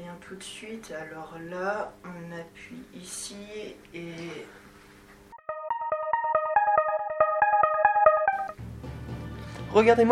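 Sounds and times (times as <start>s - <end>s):
speech: 0.2s - 4.6s, 9.7s - 10.1s
bright electronic theme jingle of pulsing synth notes: 5.3s - 8.6s.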